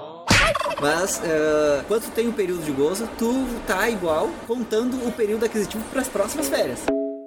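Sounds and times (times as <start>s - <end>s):
turkey gobbling: 0.3s - 1.1s
speech: 0.8s - 7.0s.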